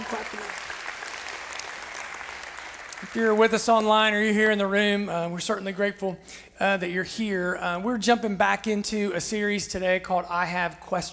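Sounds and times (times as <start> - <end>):
church congregation clapping for a worship band: 0.0 - 4.3
speech: 0.1 - 0.7, 3.0 - 11.1.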